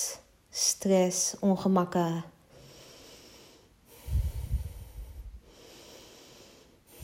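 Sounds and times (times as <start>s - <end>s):
speech: 0.8s - 2.4s
deep breathing during a guided breathing exercise: 2.5s - 7.0s.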